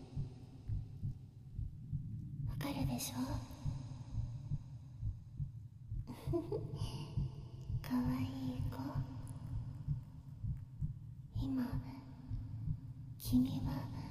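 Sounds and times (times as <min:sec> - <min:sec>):
steady heartbeat thumping: 0:00.0 - 0:14.0
soft voice whispering: 0:02.5 - 0:03.7, 0:07.8 - 0:09.7, 0:11.3 - 0:12.2, 0:13.2 - 0:14.0
speech: 0:02.7 - 0:03.6, 0:07.9 - 0:09.1, 0:11.4 - 0:12.0, 0:13.3 - 0:14.0.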